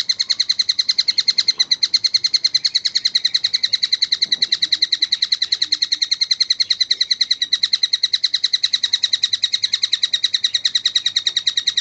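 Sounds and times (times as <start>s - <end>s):
oriental magpie-robin bright chip notes: 0.0s - 11.7s.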